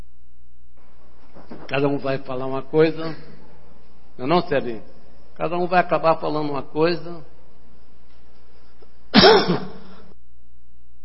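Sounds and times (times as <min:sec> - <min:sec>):
speech: 0:01.7 - 0:03.3, 0:04.2 - 0:07.3, 0:09.2 - 0:09.8
single short rough throaty cough: 0:09.1 - 0:10.1.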